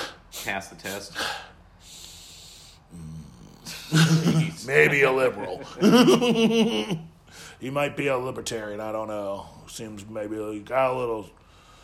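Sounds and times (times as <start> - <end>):
person imitating exaggerated sniffing: 0.0 - 4.1
speech: 0.4 - 2.0, 3.9 - 11.4
laughter: 3.7 - 7.1.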